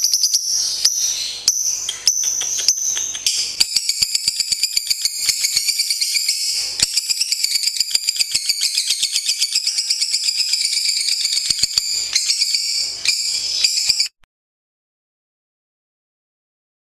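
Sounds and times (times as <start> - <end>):
champion lovebird giving high-pitched chattering song: 0.0 - 14.1.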